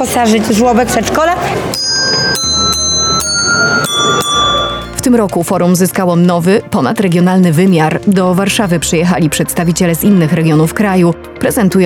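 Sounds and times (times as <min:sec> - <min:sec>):
speech: 0:00.0 - 0:04.4, 0:05.0 - 0:11.8
small hand bells ringing: 0:01.8 - 0:05.0.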